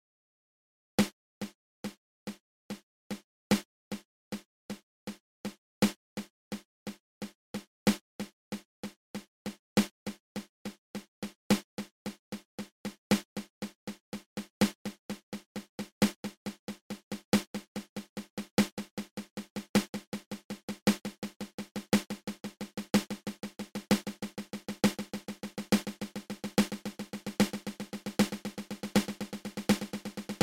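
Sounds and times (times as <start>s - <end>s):
double paradiddle drumming, open close open: 11.5s - 30.4s.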